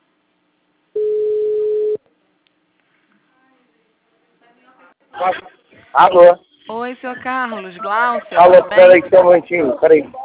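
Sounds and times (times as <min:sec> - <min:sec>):
telephone ringback tone while a call is placed: 0:01.0 - 0:02.0
speech: 0:05.2 - 0:10.2.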